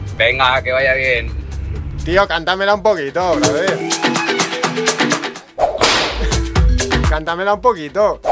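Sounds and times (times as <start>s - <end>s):
speech: 0.2s - 1.4s, 2.0s - 5.1s, 7.2s - 8.3s
whip crack sound effect with hissing tail: 5.6s - 6.2s.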